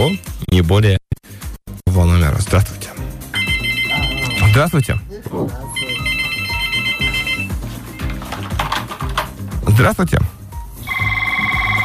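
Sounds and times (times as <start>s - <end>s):
speech: 0.0s - 1.0s, 4.6s - 6.1s, 9.8s - 10.4s
bass-heavy music beat: 0.0s - 11.8s
telephone ringing with a warbling electronic trill: 3.3s - 5.1s, 5.8s - 9.3s, 10.8s - 11.8s.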